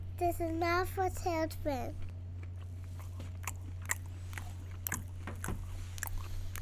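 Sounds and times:
speech: 0.2s - 2.1s
person biting and chewing a crusty bagel: 1.8s - 6.6s.

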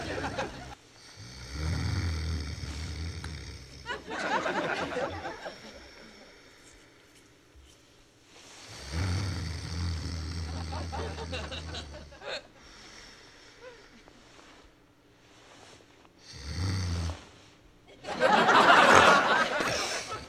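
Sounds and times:
laughter: 0.0s - 0.8s, 3.8s - 6.5s, 10.5s - 12.5s, 17.9s - 20.2s
person snoring loudly: 0.0s - 6.9s, 8.4s - 14.6s, 16.2s - 17.5s.

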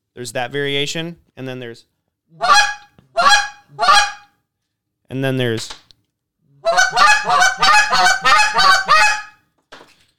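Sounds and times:
speech: 0.2s - 2.7s, 5.1s - 5.8s
goose honks blown on a hand-held goose call: 2.4s - 4.3s, 6.6s - 9.4s.

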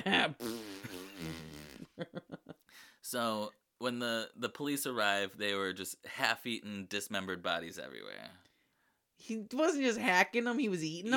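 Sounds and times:
speech: 0.0s - 0.6s, 2.0s - 2.4s, 3.0s - 8.4s, 9.2s - 11.1s
voice imitating farting noises: 0.2s - 2.0s.

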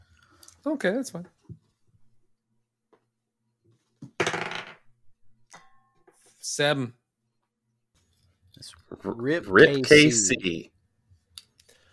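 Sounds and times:
speech: 0.6s - 1.5s, 6.4s - 7.0s, 8.6s - 10.7s
dice rolled during a tabletop game clattering: 4.2s - 4.8s.

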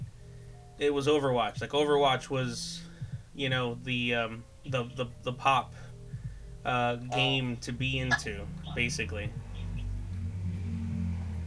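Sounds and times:
speech: 0.8s - 5.8s, 6.6s - 9.4s
low engine rumble: 7.0s - 11.4s
loud car passing by outside: 8.4s - 11.4s.

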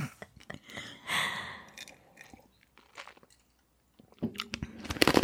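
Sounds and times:
loud crunching on ice cubes: 1.7s - 3.4s, 4.3s - 5.2s.

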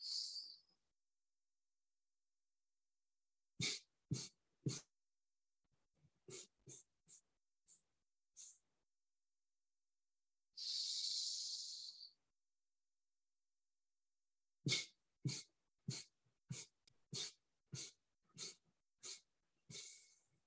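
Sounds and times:
long steady breath: 0.0s - 0.7s, 10.6s - 12.2s, 14.7s - 20.3s
short sharp segmented exhale puffs: 3.6s - 4.9s, 6.3s - 7.2s, 8.4s - 8.6s, 10.6s - 12.1s, 14.7s - 20.2s.

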